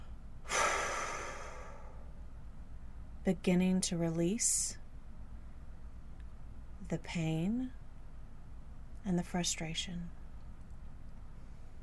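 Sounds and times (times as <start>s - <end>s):
person exhaling one deep long breath: 0.4s - 2.1s
speech: 3.2s - 4.8s, 6.9s - 7.8s, 9.0s - 10.2s.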